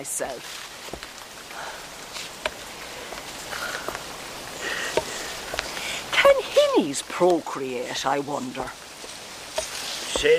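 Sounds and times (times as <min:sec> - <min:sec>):
speech: 0:00.0 - 0:01.0, 0:06.4 - 0:08.8, 0:10.2 - 0:10.3
first raindrops of a light drizzle pattering: 0:00.0 - 0:10.3
sharper scattered raindrops tapping: 0:00.0 - 0:10.3.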